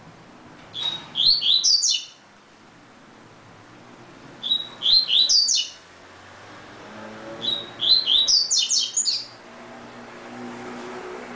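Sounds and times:
double-collared seedeater song of high sweet whistles and chirps: 0:00.8 - 0:02.2, 0:04.4 - 0:05.8, 0:07.4 - 0:09.4.

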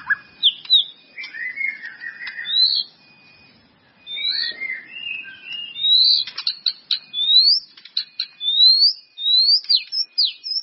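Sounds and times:
White-rumped Shama sharp clicking notes: 0:00.0 - 0:02.5, 0:05.4 - 0:08.6, 0:09.4 - 0:10.6
White-rumped Shama singing clear whistles: 0:00.0 - 0:03.3, 0:04.1 - 0:10.6.

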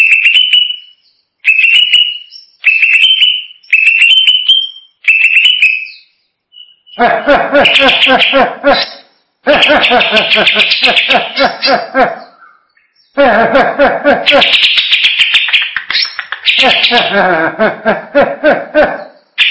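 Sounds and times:
greater green leafbird singing whistled phrases and raspy chattering: 0:00.0 - 0:13.2, 0:14.4 - 0:17.2
laughter: 0:07.0 - 0:12.3, 0:13.2 - 0:14.5, 0:16.6 - 0:19.1.

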